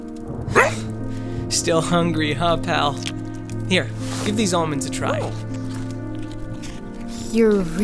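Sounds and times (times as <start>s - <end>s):
dog barking: 0.5s - 0.9s, 5.0s - 5.4s
speech: 1.5s - 3.2s, 3.7s - 5.5s, 7.3s - 7.8s.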